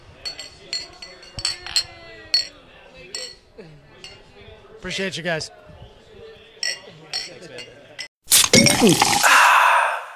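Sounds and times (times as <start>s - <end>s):
faint murmuring voices: 0.0s - 8.1s
glasses clinking in a toast: 0.2s - 3.4s, 6.6s - 9.2s
speech: 4.8s - 5.6s, 8.8s - 9.3s.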